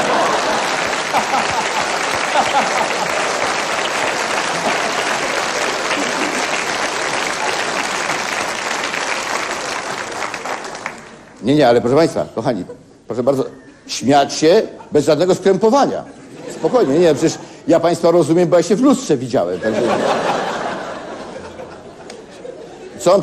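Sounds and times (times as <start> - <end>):
laughter: 0.0 - 8.3, 16.0 - 17.4, 19.4 - 23.2
audience applause for a performer's appearance: 0.0 - 11.4
speech: 11.5 - 20.4, 23.0 - 23.2.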